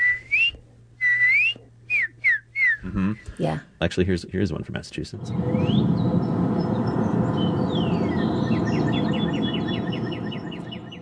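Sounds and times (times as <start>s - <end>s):
whistled imitation of a cardinal song: 0.0s - 2.9s, 5.2s - 11.0s
speech: 2.8s - 6.4s.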